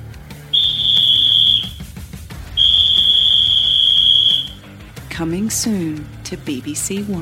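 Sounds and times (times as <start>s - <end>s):
referee's whistle blasts: 0.6s - 1.9s, 2.6s - 4.6s
speech: 5.2s - 7.2s.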